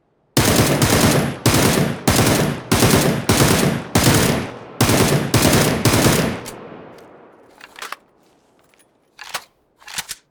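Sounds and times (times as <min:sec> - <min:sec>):
Beryl rifle burst fire: 0:00.4 - 0:08.0.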